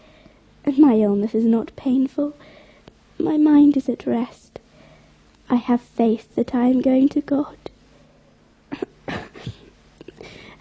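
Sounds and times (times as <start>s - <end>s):
speech: 0.6s - 2.5s, 3.2s - 4.6s, 5.5s - 7.7s
gravely ill girl coughing weakly: 8.7s - 10.2s.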